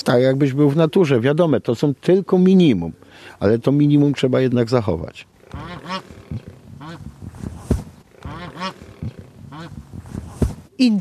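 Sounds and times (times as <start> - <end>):
speech: 0.0 - 7.1, 10.8 - 10.9
wild Canadian turkey calling: 5.4 - 7.1, 8.0 - 9.8.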